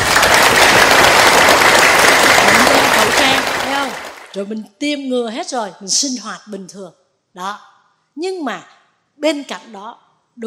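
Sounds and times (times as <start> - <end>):
audience applause at a Buddhist dharma talk: 0.0 - 4.4
speech: 4.4 - 10.4.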